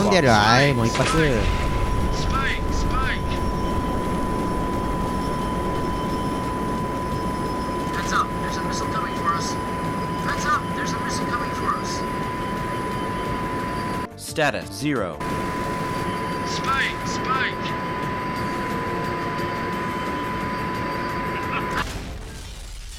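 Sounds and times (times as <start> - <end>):
video game fighter jet engine roaring: 0.0 - 14.1, 15.2 - 21.9
speech: 0.1 - 2.3, 14.4 - 15.7.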